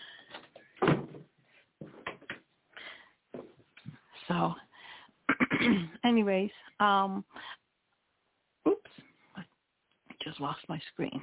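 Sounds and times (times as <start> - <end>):
soft bumps and shuffling handling noises: 0.3 - 2.5, 3.3 - 4.0
door pushed shut with a solid thud: 0.8 - 1.3
speech: 4.4 - 4.6, 5.8 - 7.5, 10.4 - 11.2.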